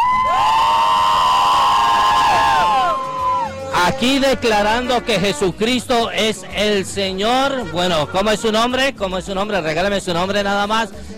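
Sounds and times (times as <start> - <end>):
crowd shouting for joy, cheering and whooping: 0.0 - 3.7
speech: 3.9 - 11.1.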